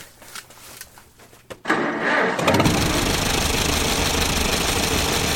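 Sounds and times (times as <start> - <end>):
restored old tractor engine in a garage cranking and running: 1.6 - 5.3.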